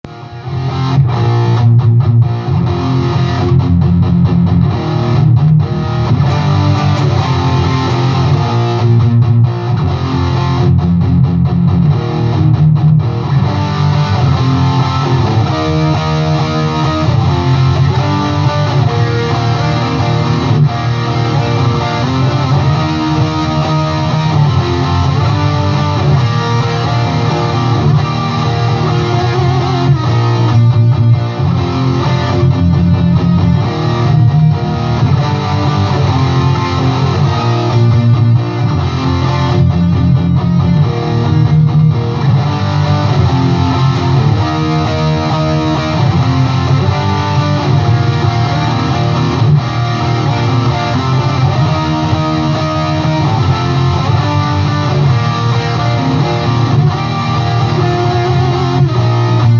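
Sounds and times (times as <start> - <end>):
punk music: 0.0 - 59.5.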